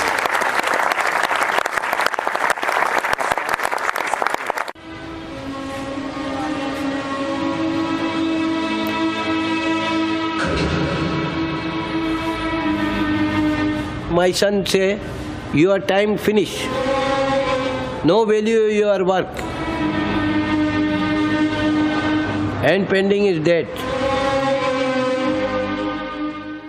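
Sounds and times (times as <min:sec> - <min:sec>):
crowd applause: 0:00.0 - 0:04.8
droning horn-like tone: 0:04.8 - 0:14.2, 0:16.5 - 0:18.1, 0:19.4 - 0:26.6
speech: 0:14.2 - 0:16.9, 0:18.0 - 0:20.0, 0:22.6 - 0:23.8.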